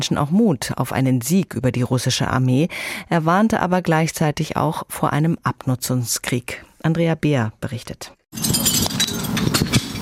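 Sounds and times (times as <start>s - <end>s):
speech: 0.0s - 8.6s
shards of broken glass preserving jars clinking and scraping in front of a house in Kyiv: 8.3s - 10.0s.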